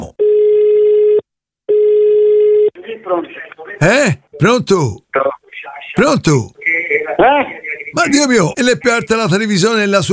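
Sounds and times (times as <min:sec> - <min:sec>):
phone line ringing through the earpiece as a call is placed: 0:00.2 - 0:02.7
speech: 0:03.1 - 0:06.6, 0:07.2 - 0:10.1.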